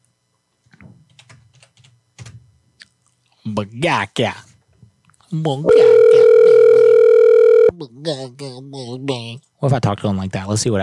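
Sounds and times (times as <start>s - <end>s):
speech: 3.5s - 4.5s, 5.3s - 6.0s, 7.8s - 10.8s
ringing tone of an outgoing telephone call through a handset: 5.7s - 7.7s.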